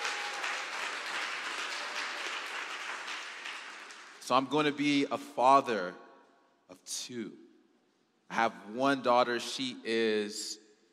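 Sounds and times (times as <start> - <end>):
audience applause and clapping: 0.0 - 4.4
speech: 4.3 - 6.0, 6.7 - 7.4, 8.3 - 10.6.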